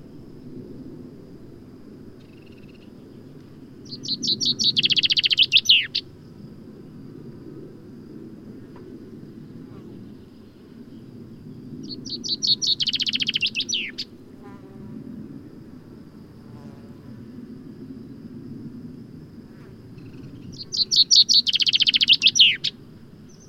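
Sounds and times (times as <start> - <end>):
common chaffinch Fringilla coelebs singing bright trills: 3.8 - 6.0, 11.8 - 14.1, 20.4 - 22.7.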